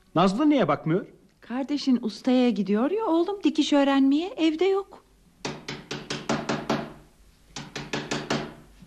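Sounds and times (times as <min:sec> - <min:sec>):
speech: 0:00.2 - 0:05.0
knocking on a house door: 0:05.4 - 0:07.0, 0:07.6 - 0:08.7.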